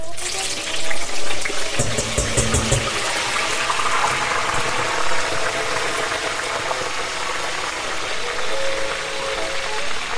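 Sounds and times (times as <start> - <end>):
eggplant pieces deep-frying in hot oil on full heat: 0.0 - 10.1.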